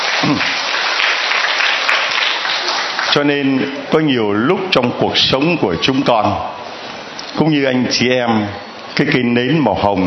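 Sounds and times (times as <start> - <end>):
audience applause: 0.0 - 3.5
speech: 0.3 - 0.6, 3.1 - 6.6, 7.3 - 10.0.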